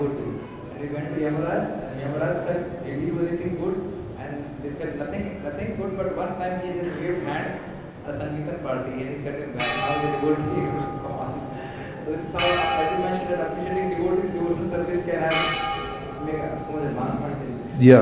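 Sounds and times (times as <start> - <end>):
speech: 0.8 - 11.2, 12.1 - 18.0
bell ringing with bright shimmering strikes: 9.6 - 17.8.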